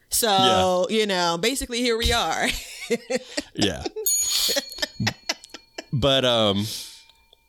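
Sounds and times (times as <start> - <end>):
speech: 0.1 - 4.6, 6.0 - 6.9
laughter: 2.4 - 6.8
bright bell ringing with a high-pitched tone: 3.7 - 7.4.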